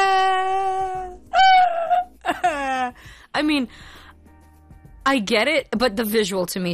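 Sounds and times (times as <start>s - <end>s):
voice imitating a group of men wailing together: 0.0s - 3.0s
speech: 3.0s - 4.0s, 5.0s - 6.7s.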